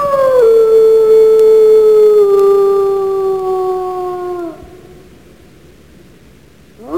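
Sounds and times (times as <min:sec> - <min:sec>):
wolf howling at night: 0:00.0 - 0:05.1, 0:06.8 - 0:06.9.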